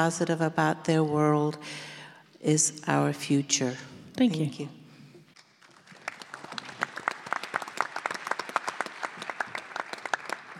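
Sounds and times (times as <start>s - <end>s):
speech: 0.0s - 4.8s
audience clapping after a candidate's answer: 5.4s - 10.5s.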